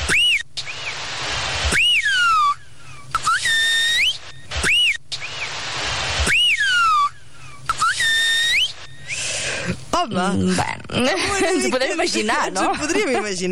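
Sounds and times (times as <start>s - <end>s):
hiss: 0.0s - 13.4s
shepherd whistling a message in whistled language: 0.1s - 1.0s, 1.7s - 5.5s, 6.2s - 9.2s
speech: 10.0s - 13.4s.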